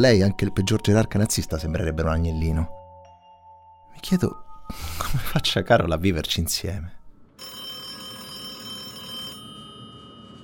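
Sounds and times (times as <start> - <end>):
speech: 0.0 - 2.8, 4.0 - 7.0
telephone ringing with a metallic bell tone: 7.4 - 10.4.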